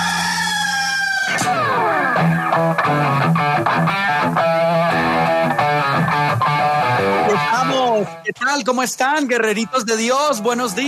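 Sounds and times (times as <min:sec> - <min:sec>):
rooster crowing: 0:00.0 - 0:02.1
speech: 0:01.3 - 0:05.2, 0:07.4 - 0:10.8
loud distorted music: 0:01.4 - 0:08.2.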